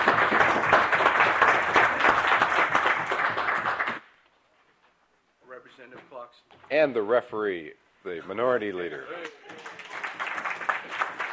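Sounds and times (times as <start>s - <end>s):
legislative chamber members applauding: 0.0s - 4.1s, 9.1s - 11.3s
speech: 6.7s - 9.3s.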